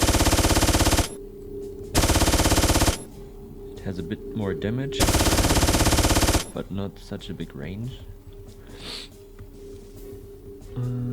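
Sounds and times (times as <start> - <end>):
machine gun firing in a video game: 0.0 - 1.2, 2.0 - 3.1, 5.0 - 6.6
speech: 3.9 - 5.6, 6.6 - 8.2, 10.8 - 11.1.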